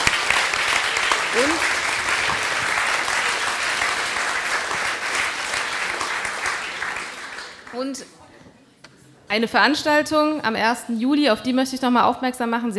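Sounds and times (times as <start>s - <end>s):
audience applause in a room full of people: 0.0s - 8.0s
speech: 1.4s - 1.7s, 7.8s - 8.2s, 9.3s - 12.7s.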